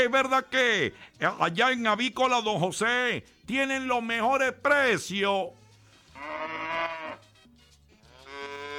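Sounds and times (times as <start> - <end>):
speech: 0.0 - 5.6
cow mooing: 6.2 - 7.3, 8.0 - 8.7.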